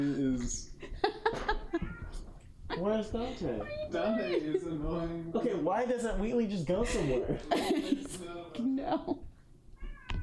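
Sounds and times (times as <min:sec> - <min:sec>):
speech: 0:00.0 - 0:00.7, 0:02.8 - 0:09.2
laughter: 0:00.8 - 0:01.9, 0:06.9 - 0:09.2
cat meowing: 0:01.7 - 0:02.3, 0:03.6 - 0:04.3, 0:09.8 - 0:10.2.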